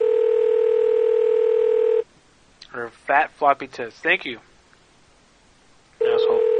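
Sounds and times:
steady telephone tone: 0:00.0 - 0:02.0, 0:06.0 - 0:06.5
speech: 0:03.1 - 0:04.5.

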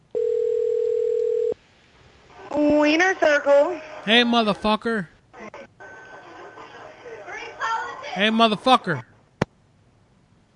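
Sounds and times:
telephone ring tone while calling a restaurant: 0:00.1 - 0:01.6
speech: 0:02.9 - 0:05.1, 0:08.2 - 0:09.1.

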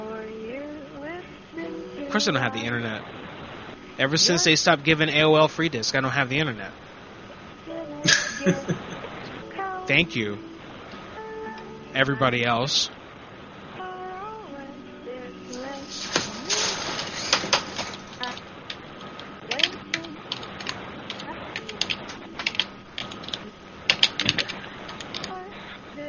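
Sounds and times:
faint tonal murmuring: 0:00.0 - 0:26.0
speech: 0:02.1 - 0:03.2, 0:04.0 - 0:06.8, 0:08.4 - 0:08.9, 0:09.9 - 0:10.5, 0:11.9 - 0:13.0
laughter: 0:08.0 - 0:09.3
loud clacky typing on an old Mac keyboard: 0:16.1 - 0:25.4.

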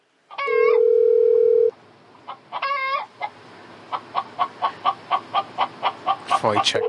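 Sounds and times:
chicken clucking and squawking: 0:00.3 - 0:00.8, 0:02.2 - 0:06.8
speech: 0:06.4 - 0:06.8.

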